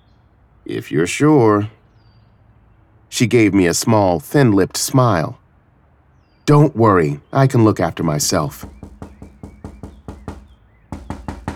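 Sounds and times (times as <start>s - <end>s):
speech: 0.6s - 1.8s, 3.2s - 5.4s, 6.5s - 8.8s
knocking on a door: 8.5s - 11.5s.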